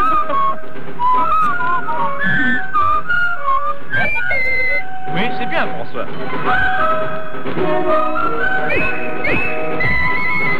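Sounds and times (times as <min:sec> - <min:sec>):
person whistling a march: 0:00.0 - 0:05.3, 0:07.6 - 0:10.5
faint musical backing: 0:00.0 - 0:10.5.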